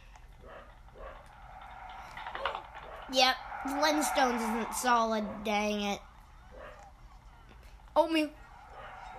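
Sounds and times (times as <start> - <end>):
steady low hum: 0.0 - 9.1
dog barking: 0.4 - 1.4, 6.5 - 6.9
speech: 3.1 - 6.1, 8.0 - 8.4.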